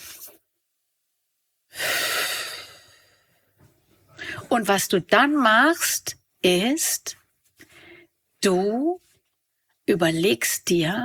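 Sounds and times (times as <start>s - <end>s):
slow breathing during a guided breathing exercise: 1.7s - 3.5s
speech: 4.5s - 7.2s, 8.4s - 9.0s, 9.9s - 11.0s.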